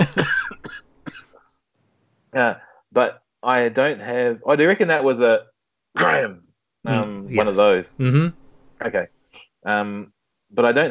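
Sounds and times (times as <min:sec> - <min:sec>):
dry coughs: 0:00.0 - 0:01.4
speech: 0:02.4 - 0:10.8.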